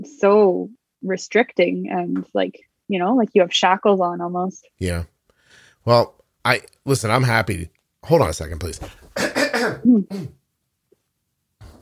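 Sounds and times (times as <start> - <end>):
speech: 0.0 - 5.1, 5.8 - 10.4
person clearing their throat: 9.1 - 10.4
person coughing: 9.1 - 10.4.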